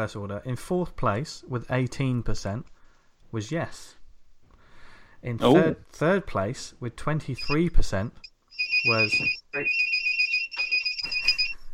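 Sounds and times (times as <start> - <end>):
speech: 0.0 - 4.0, 5.2 - 9.9
phone alarm with steady high electronic tone: 7.4 - 11.7.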